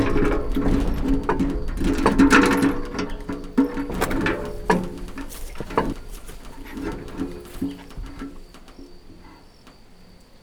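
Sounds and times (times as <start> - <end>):
bucket rattling at a wheel well in Varboc: 0.0 - 10.4.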